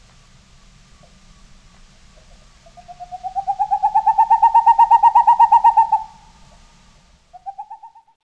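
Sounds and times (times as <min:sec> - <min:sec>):
Boreal owl song of hollow hoots: 0:02.6 - 0:06.6, 0:07.3 - 0:08.2.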